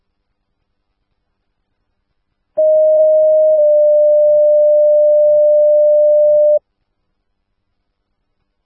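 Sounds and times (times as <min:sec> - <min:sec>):
dispatch alert tones: 0:02.6 - 0:06.6.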